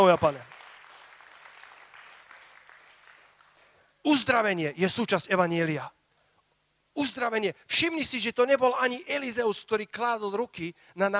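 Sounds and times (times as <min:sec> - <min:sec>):
speech: 0:00.0 - 0:00.5, 0:04.1 - 0:06.0, 0:07.0 - 0:11.1
audience applause: 0:00.0 - 0:03.7.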